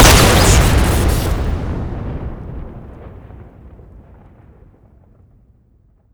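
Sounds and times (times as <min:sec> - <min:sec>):
explosive thrower weapon firing critical shot: 0:00.0 - 0:03.6.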